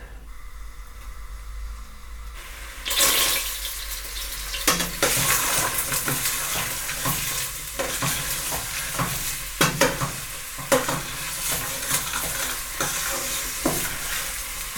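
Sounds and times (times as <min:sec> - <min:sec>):
onion sizzling in a hot pan: 0:02.4 - 0:14.7
utensil stirring and scraping through frying onion: 0:05.1 - 0:14.5.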